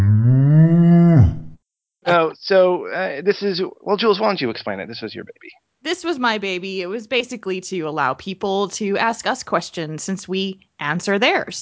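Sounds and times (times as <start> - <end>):
people imitating cows mooing: 0.0 - 2.4
speech: 2.1 - 11.6.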